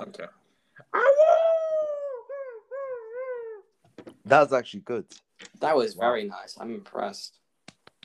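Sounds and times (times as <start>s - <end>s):
speech: 0.0s - 1.3s, 4.2s - 7.4s
person imitating a dog's howl: 0.9s - 3.7s.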